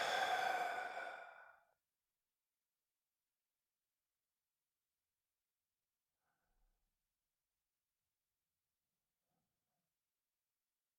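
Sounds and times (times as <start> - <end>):
long breathy exhale: 0.0 - 1.6.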